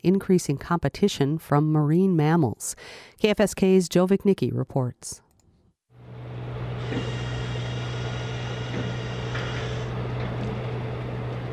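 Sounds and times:
speech: 0.0 - 5.2
high power-tool whine in a harbor: 6.0 - 11.2
loud mechanical drone in a busy harbor: 6.0 - 11.5
boat engines humming low in a harbor: 6.1 - 11.5.

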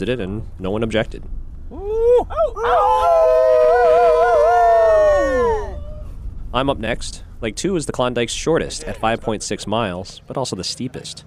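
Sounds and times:
speech: 0.0 - 3.4, 6.5 - 11.2
people in plush wolf hats howling like wolves to cheer on a teammate: 1.7 - 6.2.

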